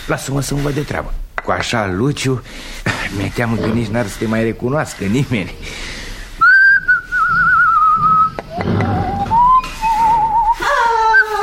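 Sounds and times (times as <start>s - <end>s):
speech: 0.1s - 6.0s
person whistling a wavering warbling tune: 6.4s - 11.4s.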